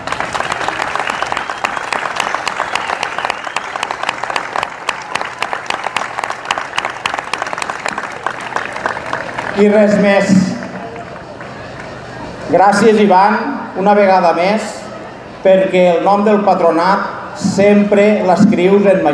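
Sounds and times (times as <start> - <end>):
audience applause: 0.0 - 12.4
speech: 9.6 - 10.5, 12.5 - 14.7, 15.4 - 19.1.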